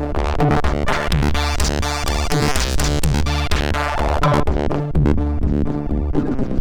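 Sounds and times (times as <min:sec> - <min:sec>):
crowd noise synthesized on a MOS6581R2 SID chip: 0:00.1 - 0:06.5.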